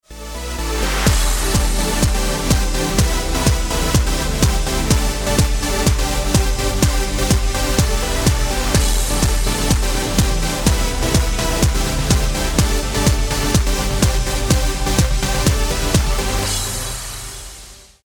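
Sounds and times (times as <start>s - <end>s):
electronic dance music: 0.0s - 18.0s.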